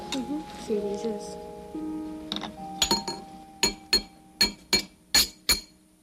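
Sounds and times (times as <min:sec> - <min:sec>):
speech: 0:00.2 - 0:01.5
hammer striking metal with sharp ringing blows: 0:02.3 - 0:05.8.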